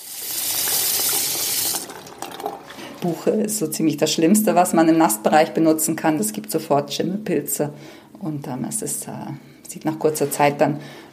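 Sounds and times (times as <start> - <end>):
water running from a tap into a wooden sink: 0.0 - 3.2
speech: 3.0 - 11.1.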